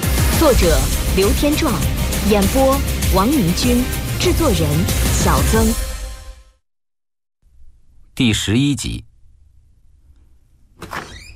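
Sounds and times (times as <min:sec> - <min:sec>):
low rumble: 0:00.1 - 0:06.0
speech: 0:00.4 - 0:05.9, 0:08.2 - 0:09.1
door being pushed open with a faint squeal: 0:10.8 - 0:11.3.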